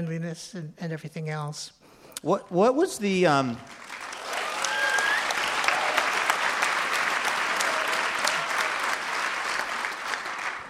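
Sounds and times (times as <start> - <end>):
speech: 0.0 - 3.9
public radio audience applauding: 3.6 - 10.6
faint whoops and cheers: 4.2 - 6.5, 7.2 - 9.0.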